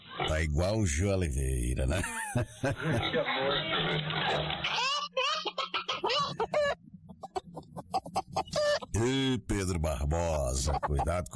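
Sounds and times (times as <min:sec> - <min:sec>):
speech: 0:00.4 - 0:05.0, 0:09.0 - 0:11.3
laughter: 0:01.7 - 0:06.8
chickens clucking in short choppy bursts: 0:04.6 - 0:09.3, 0:10.2 - 0:11.3.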